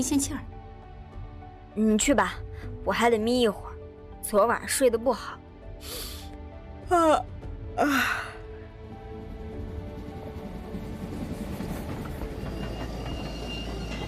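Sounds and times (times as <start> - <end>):
speech: 0.0 - 0.6, 1.8 - 6.1, 6.9 - 8.3
train slowly pulling into a station: 8.7 - 14.0.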